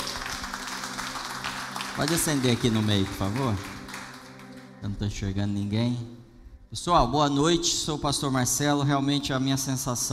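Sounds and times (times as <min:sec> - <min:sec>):
church audience clapping for a band: 0:00.0 - 0:04.9
speech: 0:02.0 - 0:03.7, 0:04.8 - 0:10.1.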